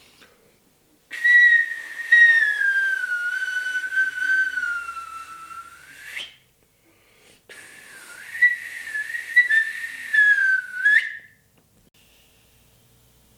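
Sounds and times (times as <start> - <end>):
hissy breath noise: 0.0 - 0.6, 5.3 - 8.8
breathy whistle blown through a natural-hole stone flute: 1.1 - 6.5, 7.5 - 11.4.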